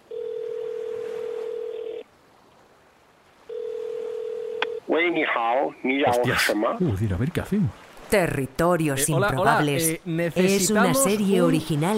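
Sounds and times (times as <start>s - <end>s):
electronic ringback tones through a speakerphone: 0.0s - 2.0s, 3.5s - 4.9s
voice answering on a phone line: 4.6s - 7.0s, 8.9s - 11.9s
speech: 5.0s - 11.9s.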